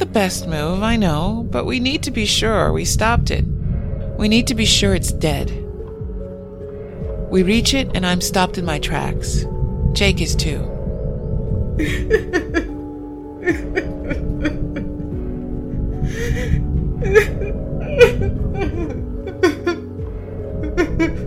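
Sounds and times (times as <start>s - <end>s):
speech: 0.0s - 3.6s, 4.2s - 5.6s, 7.3s - 10.7s, 11.8s - 12.7s, 13.4s - 14.6s, 17.1s - 17.4s
low steady rumble: 0.0s - 21.2s
girl crying and sobbing: 11.8s - 20.0s, 20.6s - 21.2s.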